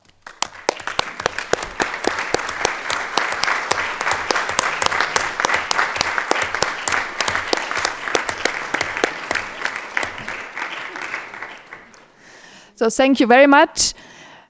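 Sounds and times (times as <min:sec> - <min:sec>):
large audience applauding: 0:00.0 - 0:12.5
speech: 0:12.8 - 0:14.1.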